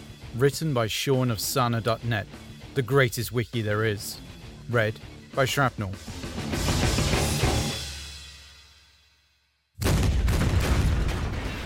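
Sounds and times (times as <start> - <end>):
speech: 0.4 - 6.7
booming blast: 9.8 - 11.6
loud rumbling explosion sound effect: 9.8 - 11.6.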